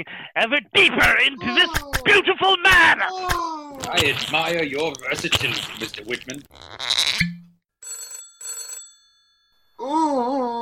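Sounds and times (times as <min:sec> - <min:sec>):
speech: 0:00.0 - 0:07.3
old-fashioned telephone bell ringing: 0:07.8 - 0:09.8.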